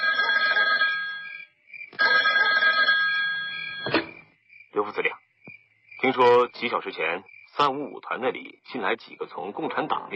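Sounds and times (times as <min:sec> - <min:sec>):
telephone bell ringing: 0:00.0 - 0:04.0
speech: 0:04.9 - 0:05.1, 0:06.2 - 0:10.1.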